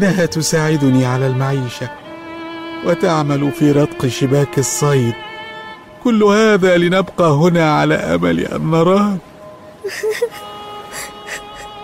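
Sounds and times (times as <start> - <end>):
speech: 0.0 - 2.0, 2.8 - 5.3, 6.0 - 10.2
short whimpering cries: 9.8 - 11.8
two people sobbing softly: 9.8 - 11.8.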